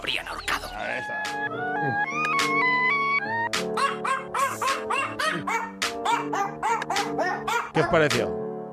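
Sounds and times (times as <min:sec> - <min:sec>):
speech: 0:00.0 - 0:02.7, 0:07.8 - 0:08.4
New Guinea singing dog howling and yipping: 0:03.8 - 0:07.8.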